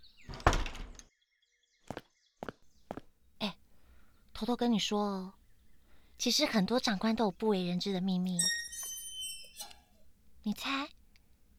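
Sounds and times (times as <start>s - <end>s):
door slamming shut with a brief rattle: 0.0s - 1.1s
quieter knocks: 0.3s - 1.0s
speech: 4.4s - 5.4s, 6.2s - 8.6s, 10.4s - 11.0s.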